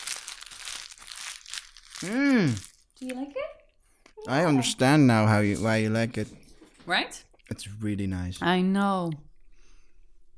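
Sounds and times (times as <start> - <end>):
small paper bag crinkling and rustling: 0.0 - 3.0
speech: 2.0 - 3.6, 4.2 - 9.3.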